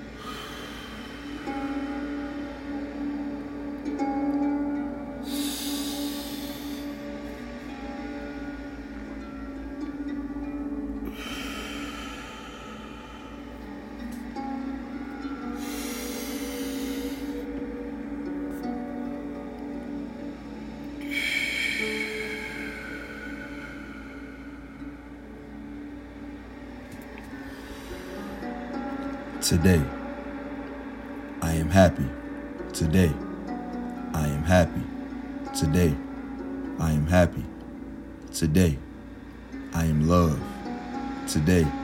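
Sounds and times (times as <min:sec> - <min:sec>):
deep breathing in through the nose and out through the mouth: 0:00.0 - 0:03.0, 0:05.2 - 0:08.4, 0:11.0 - 0:18.7, 0:20.0 - 0:25.8, 0:27.2 - 0:30.2
soft steady musical drone: 0:00.0 - 0:41.8
speech: 0:29.5 - 0:29.9, 0:31.8 - 0:32.2, 0:32.8 - 0:33.2, 0:34.5 - 0:34.9, 0:35.6 - 0:36.0, 0:36.8 - 0:37.5, 0:38.4 - 0:38.8, 0:39.7 - 0:40.5, 0:41.3 - 0:41.8.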